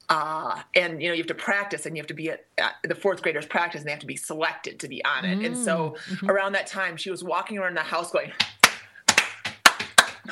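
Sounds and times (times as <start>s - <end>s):
speech: 0.1s - 8.6s
rhythmic hand clapping for a step team routine: 8.3s - 10.2s.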